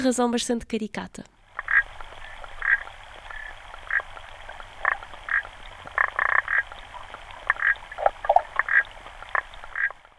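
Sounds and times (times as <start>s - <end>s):
speech: 0.0s - 1.4s
faint hiss: 0.0s - 10.1s
frog croaking: 1.5s - 10.1s.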